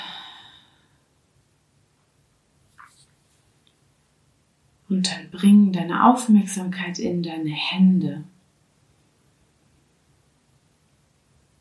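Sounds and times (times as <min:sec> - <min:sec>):
brief soft breath: 0:00.0 - 0:01.1
speech: 0:04.9 - 0:08.3.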